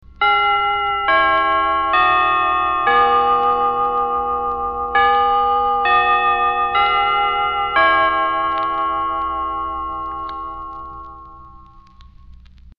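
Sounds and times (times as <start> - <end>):
percussion chimes struck with mallets: 0.2 - 12.0.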